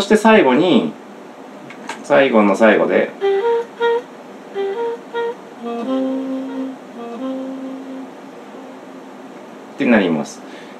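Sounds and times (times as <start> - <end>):
speech: 0.0 - 1.0, 2.1 - 3.4, 9.8 - 10.5
sustained humming tones: 2.7 - 10.4
bright synthesized note with two-beat delay echoes: 4.6 - 9.1.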